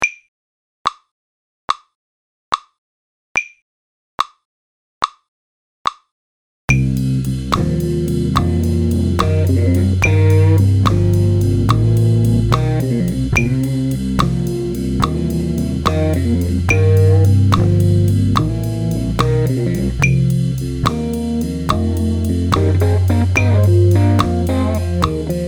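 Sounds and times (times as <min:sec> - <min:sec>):
blues grooves: 0:06.8 - 0:25.4.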